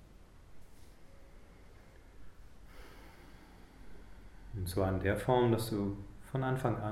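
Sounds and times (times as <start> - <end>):
slow deliberate soft breathing: 0.7 - 4.9
speech: 4.6 - 6.9.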